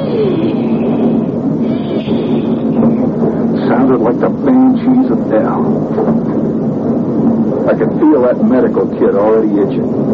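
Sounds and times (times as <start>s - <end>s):
train wheels metallic whine and squealing: 0.0s - 3.7s
train rolling along the rails: 0.0s - 10.1s
speech: 4.1s - 6.5s, 7.7s - 10.1s.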